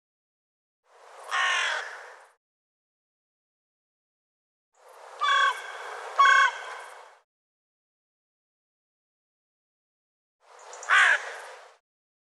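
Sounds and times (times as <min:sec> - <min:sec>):
harsh bird calls: 0:05.2 - 0:07.0, 0:10.6 - 0:11.5.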